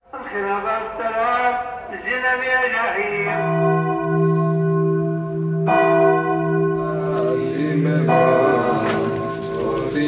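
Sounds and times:
speech: 0.4s - 1.2s, 1.9s - 3.7s
church bells ringing: 3.2s - 10.0s.

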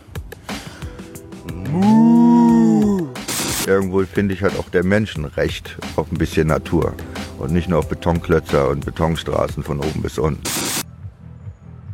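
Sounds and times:
person imitating a cow mooing: 1.3s - 3.3s
speech: 3.7s - 10.7s.

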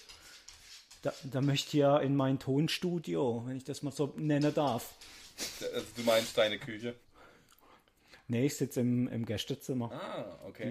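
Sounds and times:
dachshund scratching: 0.0s - 2.1s, 4.1s - 6.6s
speech: 1.0s - 7.0s, 8.3s - 10.6s.

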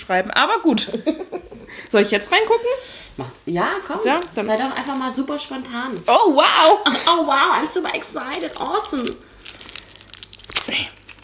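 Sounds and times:
speech: 0.0s - 9.3s, 10.6s - 11.0s
plastic foil wrapping crinkling as a book is unwrapped: 3.6s - 11.2s.

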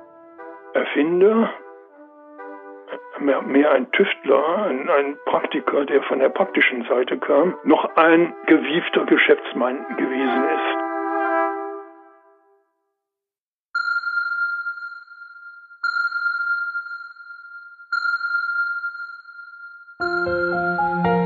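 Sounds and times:
speech: 0.8s - 1.6s, 3.2s - 10.9s
echo sounder sonar pings: 13.8s - 21.1s.

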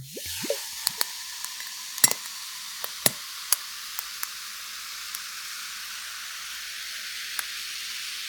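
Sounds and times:
tonic water fizzing over ice cubes in a glass: 0.0s - 8.2s
clinks and pops of ice in tonic water: 0.2s - 4.4s.

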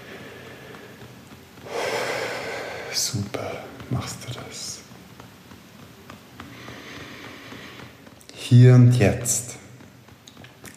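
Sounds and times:
deep breath taken during a guided healing exercise: 0.0s - 3.0s, 6.5s - 8.0s
speech: 2.9s - 5.0s, 8.5s - 9.5s.

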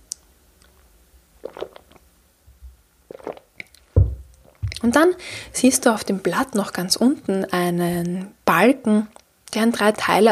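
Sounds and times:
wet mouth clicks: 1.4s - 2.0s, 3.1s - 4.8s
person sipping water: 1.4s - 2.1s, 3.1s - 4.8s
soft gulps: 1.4s - 2.1s, 3.1s - 4.9s
speech: 4.8s - 10.3s.

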